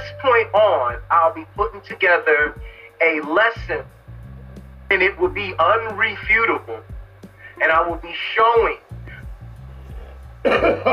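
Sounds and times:
speech: 0.3s - 4.0s, 4.9s - 6.9s, 7.6s - 8.9s, 10.4s - 10.9s
person coughing: 10.4s - 10.9s.

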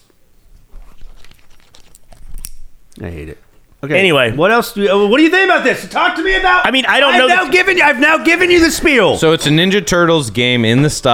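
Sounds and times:
plastic wrapping of hot sauce packages crinkling and tearing: 0.8s - 2.6s
speech: 3.0s - 11.1s.

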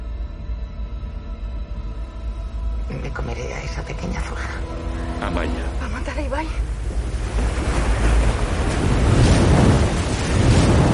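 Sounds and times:
speech: 2.9s - 7.6s
flooding river water rushing over a bridge: 5.3s - 10.9s.

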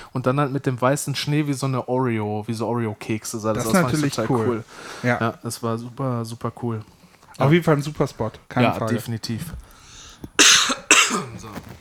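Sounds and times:
speech: 0.2s - 9.7s
rough throat sound: 10.4s - 11.4s
coughing: 10.4s - 11.5s.

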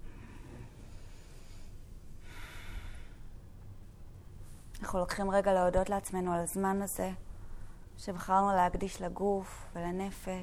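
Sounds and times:
deep breath during a yoga session: 0.0s - 3.3s
speech: 4.9s - 7.2s, 8.0s - 10.4s.

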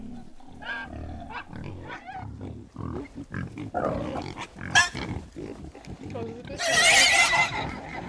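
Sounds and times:
piglet squealing aggressively while being killed: 0.0s - 2.2s, 6.6s - 8.0s
people talking: 6.0s - 6.8s.

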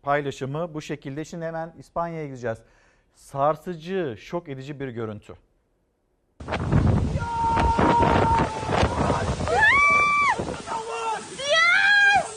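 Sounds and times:
speech: 0.0s - 5.4s, 6.4s - 7.4s
roaring storm wind: 6.4s - 11.6s
heavy surging giant waves: 6.4s - 12.3s
raised voices: 7.1s - 12.3s.

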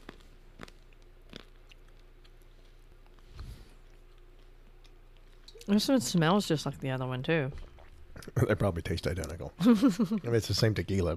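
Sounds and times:
person chewing an almond: 0.0s - 5.7s
speech: 5.7s - 11.1s.

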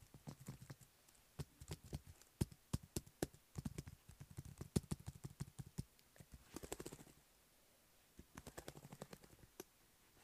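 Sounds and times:
fast tapping clicks: 0.0s - 5.9s, 8.3s - 9.7s.

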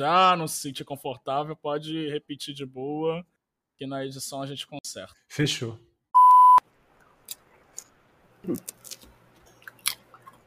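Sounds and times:
speech: 0.0s - 5.9s, 8.4s - 9.0s
short electronic beep: 6.2s - 6.6s
chewing food: 7.2s - 10.4s.

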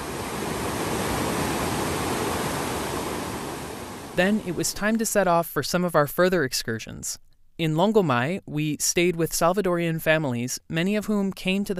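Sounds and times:
crystal clear river flowing through forest around Las Nubes: 0.0s - 4.6s
speech: 4.2s - 11.7s.

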